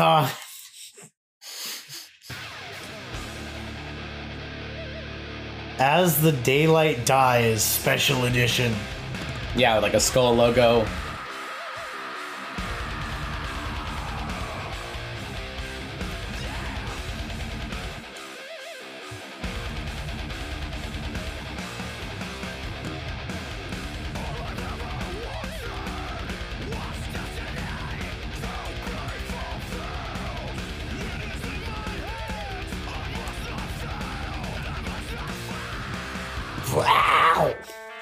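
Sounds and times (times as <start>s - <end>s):
speech: 0.0s - 0.4s, 5.8s - 9.0s, 9.6s - 11.0s
distorted guitars in a metal track: 2.3s - 38.0s
harsh screamed vocals in a metal track: 10.2s - 15.4s, 16.2s - 17.4s, 24.2s - 37.7s.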